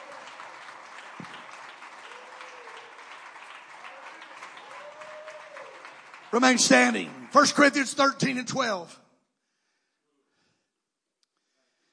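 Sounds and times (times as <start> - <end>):
audience clapping: 0.0 - 8.7
speech: 6.4 - 9.0.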